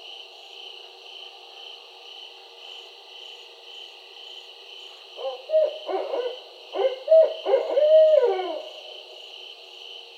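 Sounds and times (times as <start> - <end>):
steady high insect drone: 0.0 - 10.1
barred owl hooting: 5.2 - 9.0.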